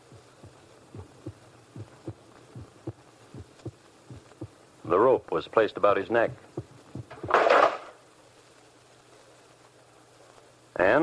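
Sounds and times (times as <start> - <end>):
pounding heartbeat in deep lub-dub pairs: 0.0 - 4.6, 6.6 - 7.4
speech: 4.9 - 6.5.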